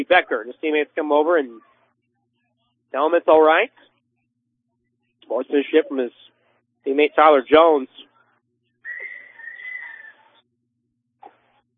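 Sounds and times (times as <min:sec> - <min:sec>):
speech: 0:00.0 - 0:01.7, 0:02.9 - 0:03.9, 0:05.3 - 0:08.1
referee's whistle blown for timeout: 0:08.9 - 0:10.3.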